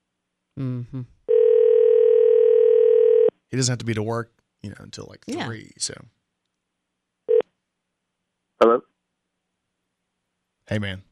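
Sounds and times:
speech: 0:00.6 - 0:01.2, 0:03.5 - 0:06.2, 0:10.7 - 0:11.1
telephone dial tone while calling someone: 0:01.3 - 0:03.3.

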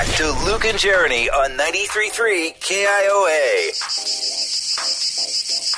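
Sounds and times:
speech: 0:00.1 - 0:04.2
cicadas buzzing loudly in Iowa: 0:03.3 - 0:05.7.

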